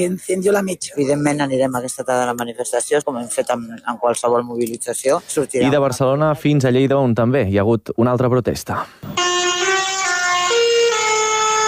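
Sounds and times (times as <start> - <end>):
speech: 0.0 - 9.2
tractor horns honking at a street protest: 9.2 - 11.6.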